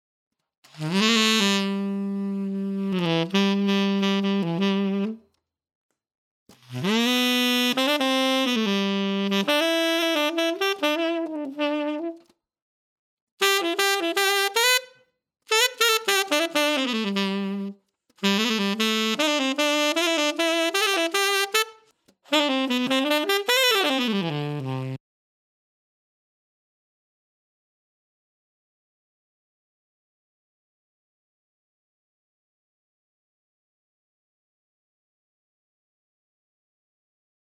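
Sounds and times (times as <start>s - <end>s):
tenor saxophone: 0.7s - 5.4s, 6.5s - 12.4s, 13.4s - 25.0s.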